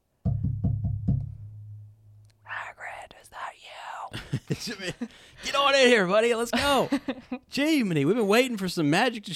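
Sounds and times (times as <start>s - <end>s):
heavy forceful pounding on a door: 0.2s - 1.4s
speech: 4.1s - 9.3s.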